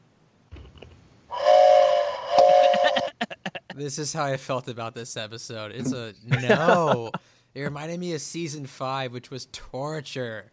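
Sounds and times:
train whistle: 1.3 - 3.1
laughter: 2.6 - 3.8, 5.8 - 7.8
speech: 3.8 - 10.5.

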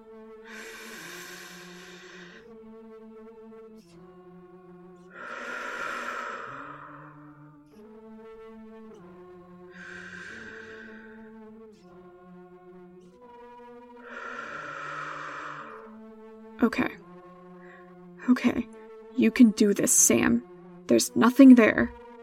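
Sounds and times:
steady humming tonal background: 0.0 - 22.2
slow deep breathing: 0.4 - 2.5, 5.1 - 7.4, 9.7 - 11.5, 14.0 - 16.0, 17.6 - 18.0
speech: 16.6 - 17.0, 18.3 - 22.0.

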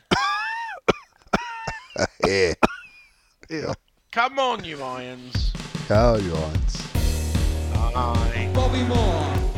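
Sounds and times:
person coughing harshly: 0.0 - 3.0
speech: 2.0 - 2.7, 3.5 - 6.8, 7.8 - 9.4.

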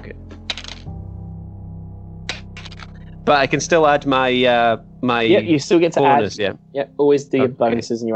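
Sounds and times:
dice clattering across a hard table: 0.5 - 0.9
low steady hum: 1.0 - 8.1
speech: 3.2 - 8.1.

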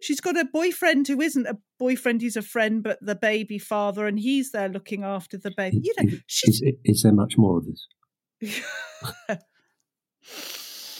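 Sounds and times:
speech: 0.0 - 9.5
sniffy intake of breath through the nose: 10.2 - 10.9.

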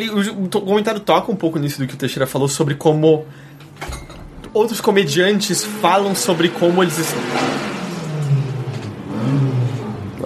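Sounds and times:
speech: 0.0 - 7.8
car engine revving hard: 5.0 - 10.2.

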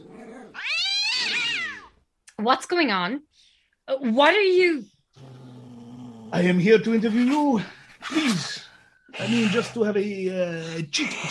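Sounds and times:
cat grumbling: 0.0 - 1.9, 5.2 - 7.4
cat caterwauling: 0.4 - 2.0
speech: 2.4 - 5.3, 6.3 - 11.2.

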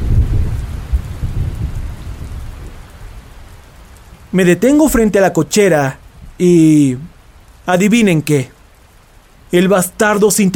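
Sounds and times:
deep rolling thunder: 0.0 - 3.2
steady wash of pouring rain: 0.0 - 10.5
speech: 4.3 - 7.1, 7.7 - 8.6, 9.5 - 10.5.

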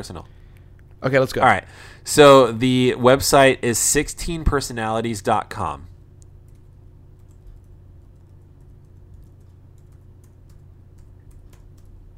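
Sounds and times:
speech: 0.0 - 0.4, 1.0 - 5.9
low hum: 0.0 - 12.1
computer keyboard typing: 6.4 - 12.1.

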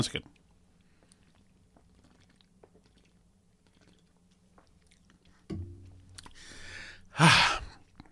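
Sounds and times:
speech: 0.0 - 0.4, 7.2 - 7.6
person sipping light beer: 0.8 - 8.1
loud breathy exhale of satisfaction: 6.3 - 7.8.

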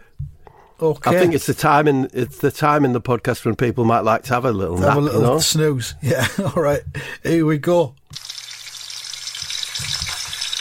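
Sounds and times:
speech: 0.8 - 8.2
sausages sizzling as they fry: 8.1 - 10.6.

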